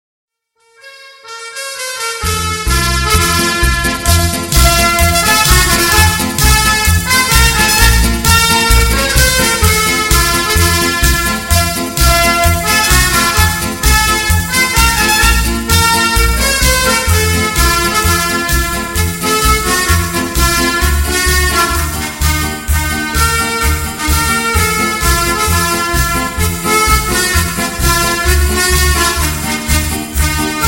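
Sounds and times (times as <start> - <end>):
polka band playing: 1.4 - 30.6.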